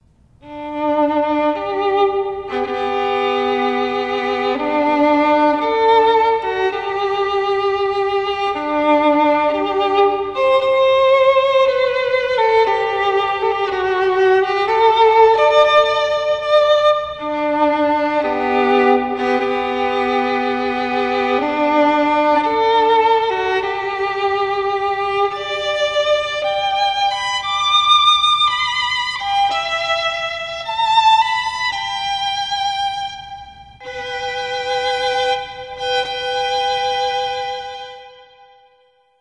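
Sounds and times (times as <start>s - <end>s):
solo violin: 0.0s - 39.1s.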